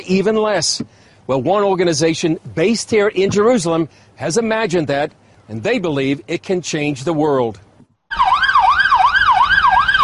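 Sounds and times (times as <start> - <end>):
speech: 0.0 - 8.3
low road rumble: 0.0 - 10.0
ambulance motorcycle siren wailing while riding through city traffic in Israel: 8.1 - 10.0.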